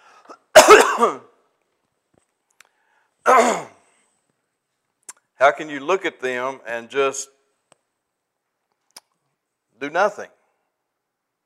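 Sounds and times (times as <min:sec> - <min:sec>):
person clearing throat: 0:00.3 - 0:01.3, 0:03.3 - 0:03.8
person coughing: 0:00.3 - 0:01.3, 0:03.3 - 0:03.8
speech: 0:01.0 - 0:01.3, 0:03.3 - 0:03.7, 0:05.4 - 0:07.4, 0:09.8 - 0:10.4.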